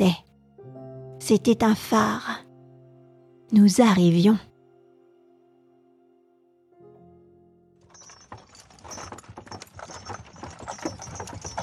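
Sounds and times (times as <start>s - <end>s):
speech: 0.0s - 0.2s, 1.3s - 2.4s, 3.5s - 4.5s
horse hooves clip-clopping at a walk: 7.8s - 11.6s.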